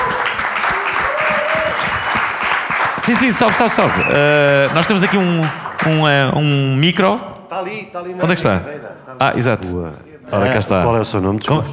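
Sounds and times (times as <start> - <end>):
audience applause at a festival event: 0.0 - 6.5
speech: 3.1 - 11.7.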